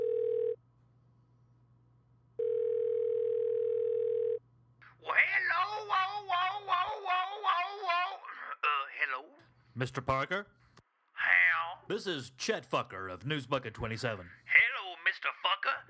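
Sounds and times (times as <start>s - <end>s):
telephone ringback tone: 0.0s - 0.6s, 2.4s - 4.4s
faint low hum: 0.0s - 15.8s
speech: 9.2s - 10.6s, 11.9s - 14.4s.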